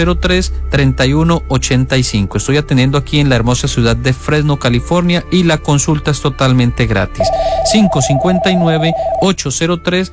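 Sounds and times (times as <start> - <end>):
speech: 0.0 - 10.1
telephone ringing with an incoming call: 7.2 - 9.3.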